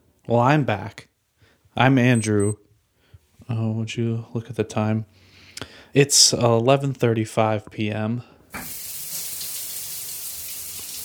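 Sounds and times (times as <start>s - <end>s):
speech: 0.3s - 1.1s, 1.8s - 2.6s, 3.5s - 8.8s
shower water running in a steady hissing stream: 8.5s - 11.0s.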